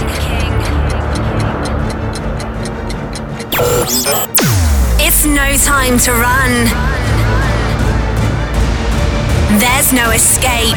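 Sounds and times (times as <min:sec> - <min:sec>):
rapid sharp ticking: 0:00.0 - 0:08.2
sudden swooshing electronic burst: 0:03.5 - 0:06.5
thick low rumble: 0:03.5 - 0:10.7
speech: 0:05.2 - 0:07.2, 0:09.5 - 0:10.7.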